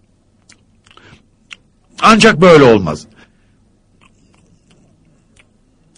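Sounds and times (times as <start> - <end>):
person chewing crunchy food: 0.3 - 1.9, 3.9 - 5.9
speech: 2.0 - 3.1.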